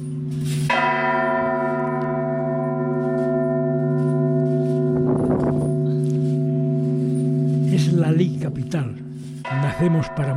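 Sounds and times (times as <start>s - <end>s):
church bell tolling a slow death knell: 0.0s - 10.3s
speech: 8.2s - 10.3s.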